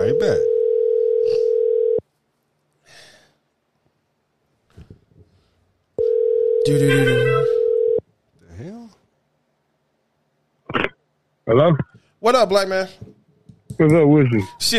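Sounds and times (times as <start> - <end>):
outgoing phone call ringing tone on the line: 0.0 - 2.0, 6.0 - 8.0
speech: 0.2 - 0.5, 6.6 - 7.6, 11.5 - 13.2, 13.8 - 14.7.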